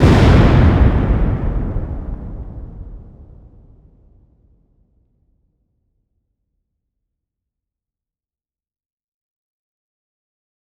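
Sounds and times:
fireball explosion blast: 0:00.0 - 0:04.4.

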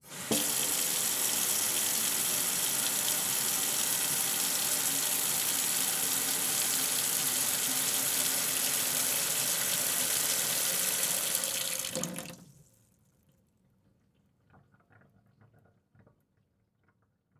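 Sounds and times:
household kitchen sink faucet turning on and shutting off: 0:00.0 - 0:12.5.

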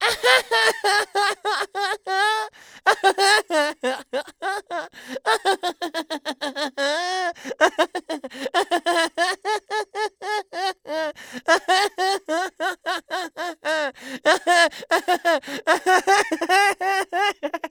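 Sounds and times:
boy laughing: 0:00.0 - 0:17.6.

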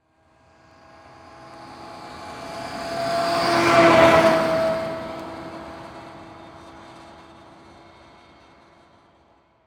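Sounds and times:
Ford Ranger truck driving by at medium speed: 0:01.8 - 0:07.6.

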